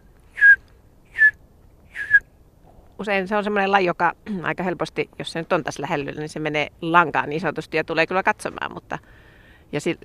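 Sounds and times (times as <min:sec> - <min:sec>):
person whistling an imitation of a bullfinch call in a forest: 0:00.4 - 0:02.3
speech: 0:03.0 - 0:10.0.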